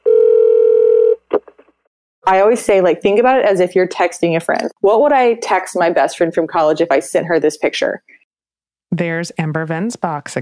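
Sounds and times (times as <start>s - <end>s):
telephone dial tone: 0.0s - 1.2s
speech: 2.3s - 8.2s, 8.9s - 10.3s.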